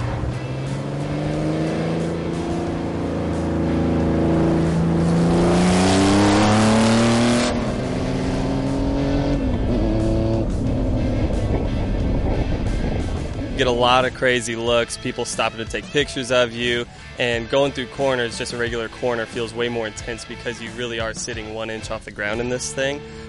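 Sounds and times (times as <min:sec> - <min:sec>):
street-legal race car engine accelerating: 0:00.0 - 0:14.1
speech: 0:13.7 - 0:23.2.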